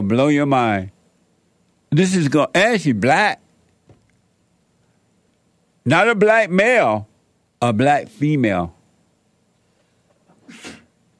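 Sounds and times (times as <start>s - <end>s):
speech: 0.1s - 0.9s, 1.9s - 3.4s, 5.8s - 8.8s
sneeze: 10.4s - 11.0s.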